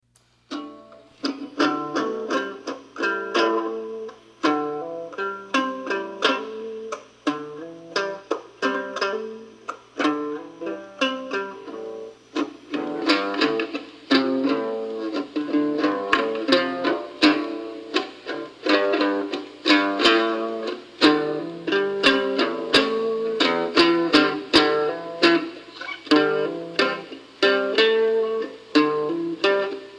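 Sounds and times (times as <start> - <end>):
acoustic blues jam riff: 0.5 - 29.9.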